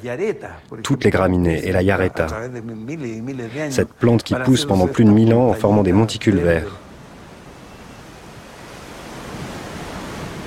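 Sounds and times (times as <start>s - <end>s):
speech: 0.0s - 6.8s
wind blowing across high mountain grassland: 4.3s - 10.4s.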